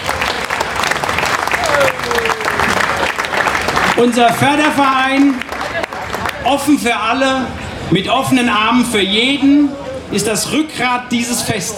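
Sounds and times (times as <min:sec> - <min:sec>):
audience applause at outdoor festival: 0:00.0 - 0:06.6
speech: 0:04.0 - 0:05.5, 0:06.4 - 0:11.7.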